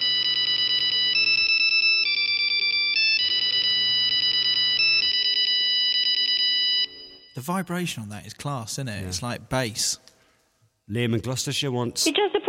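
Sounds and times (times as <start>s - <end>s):
polyphonic dance tune ringtone on an old Nokia phone: 0.0s - 7.4s
speech: 7.5s - 10.1s, 10.9s - 12.4s.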